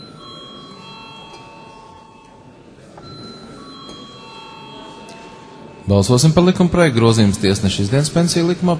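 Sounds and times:
parliament voting electric bell ringing before a vote on a bill: 0.0s - 6.9s
faint room murmur: 0.0s - 8.7s
speech: 5.9s - 8.7s.

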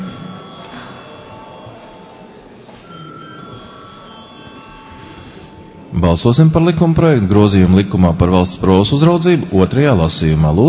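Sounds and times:
electric voting bell ringing in a parliament chamber: 0.0s - 2.1s, 2.8s - 5.9s
speech: 5.9s - 10.6s.

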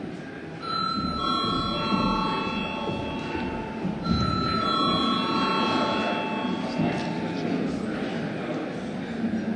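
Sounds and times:
low murmur: 0.0s - 9.5s
loud electric parliament attendance registration bell ringing: 0.6s - 7.4s.

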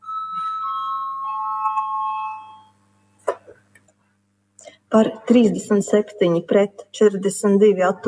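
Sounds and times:
electric voting bell ringing in a parliament chamber: 0.0s - 3.2s
speech: 4.9s - 8.0s.

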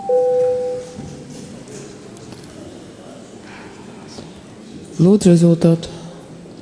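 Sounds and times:
parliament voting electronic bell tone: 0.0s - 1.0s
speech: 5.0s - 6.0s.

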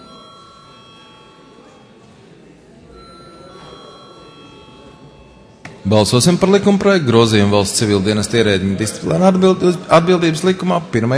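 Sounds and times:
bell rung in a parliament chamber to call members to a vote: 0.0s - 2.1s, 2.9s - 9.2s
murmur of voices: 0.0s - 11.1s
speech: 5.8s - 11.1s.

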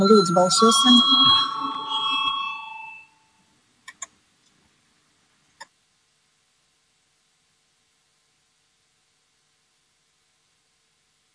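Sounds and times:
speech: 0.0s - 1.4s
parliamentary voting electric bell ringing: 0.0s - 3.4s
sharp clicks: 3.9s - 4.2s.

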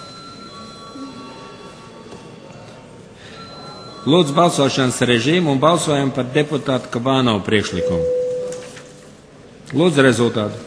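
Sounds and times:
parliamentary voting call bell ringing: 0.0s - 1.7s, 3.3s - 5.2s, 7.7s - 8.7s
speech: 4.0s - 8.2s, 9.7s - 10.6s.

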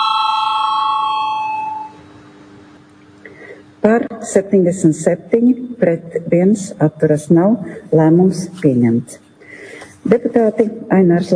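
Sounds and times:
parliament voting bell ringing: 0.0s - 2.0s
speech: 3.8s - 9.2s, 10.1s - 11.3s.

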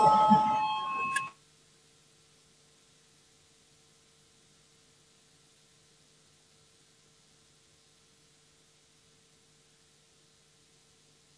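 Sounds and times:
parliament voting bell ringing in a bright electric tone: 0.0s - 1.4s.

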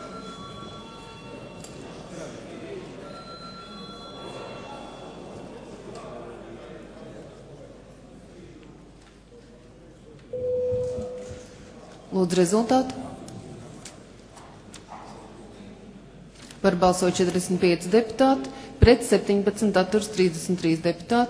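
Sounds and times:
parliamentary voting bell ringing: 0.0s - 1.8s, 3.0s - 5.1s, 10.4s - 11.6s
murmuring parliamentary chamber: 0.0s - 21.2s
speech: 12.2s - 13.0s, 16.7s - 21.2s.

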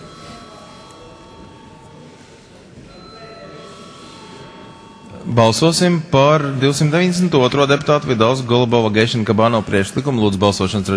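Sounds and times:
electric bell ringing in a parliament chamber: 0.0s - 6.9s
speech: 5.2s - 10.9s.

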